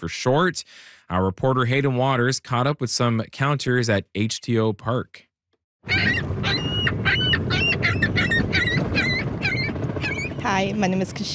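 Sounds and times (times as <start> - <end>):
speech: 0.0 - 6.7, 10.6 - 11.3
constant rumble of wind or water: 5.9 - 11.3
seagulls squawking at a waterfront park: 5.9 - 11.3.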